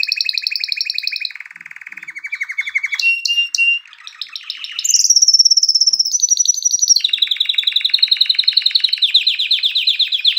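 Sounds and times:
canary song: 0.0 - 10.3.

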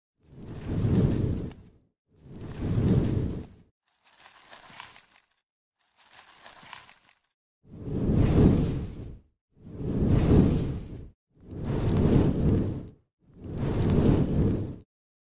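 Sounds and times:
fire burning: 0.3 - 3.6, 7.8 - 14.8.

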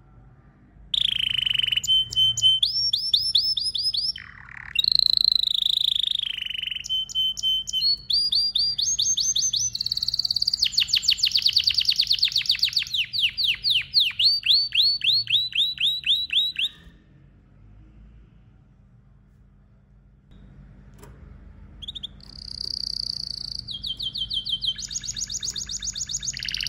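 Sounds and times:
canary singing varied phrases with trills and rattles: 1.0 - 17.0, 21.8 - 26.6.

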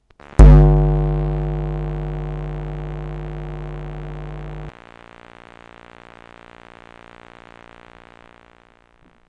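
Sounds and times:
electromagnetic noise: 0.0 - 9.2.

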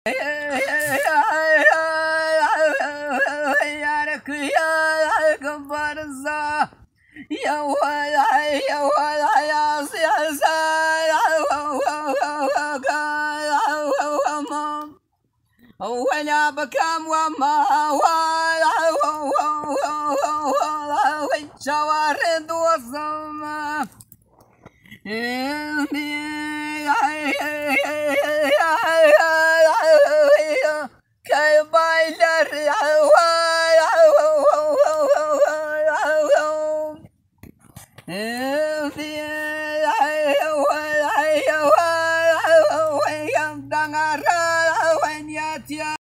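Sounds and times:
Kurdish hore singing: 0.0 - 46.0.

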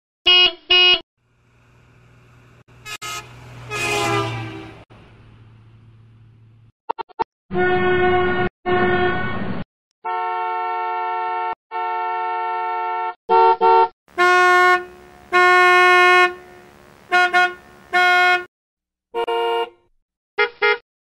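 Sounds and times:
vehicle horn: 0.2 - 1.0, 2.7 - 4.9, 7.5 - 9.3, 10.0 - 18.5, 19.1 - 20.8.

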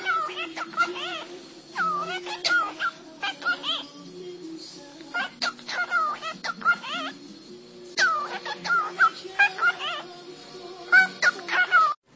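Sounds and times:
cockatiel chattering: 0.0 - 4.0, 5.1 - 7.2, 8.0 - 10.1, 10.9 - 12.0
steady low background hum: 0.0 - 12.1.

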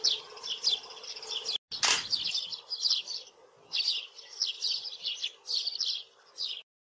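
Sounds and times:
Eurasian tree sparrow giving bright clipped chirps: 0.0 - 6.7
sharp crack: 1.7 - 2.2.

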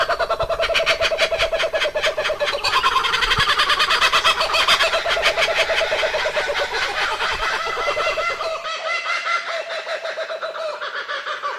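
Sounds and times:
kookaburra laughing call: 0.0 - 11.5.

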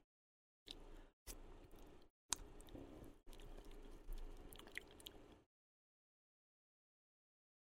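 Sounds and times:
yogurt ASMR sounds: 0.7 - 5.4.

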